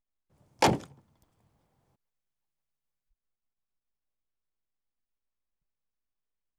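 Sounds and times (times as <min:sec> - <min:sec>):
Land Rover Safari diesel door: 0:00.6 - 0:01.0.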